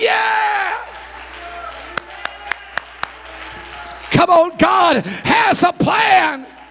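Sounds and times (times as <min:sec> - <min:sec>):
sharp hand claps: 0:01.0 - 0:04.2
speech: 0:04.2 - 0:06.6.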